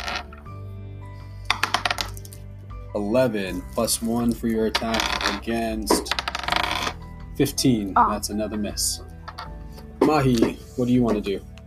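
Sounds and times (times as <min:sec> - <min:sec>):
dice tumbling across a tabletop: 0:00.0 - 0:00.4, 0:01.5 - 0:02.3, 0:04.7 - 0:07.0
speech: 0:03.0 - 0:06.3, 0:07.4 - 0:09.1, 0:10.0 - 0:11.5.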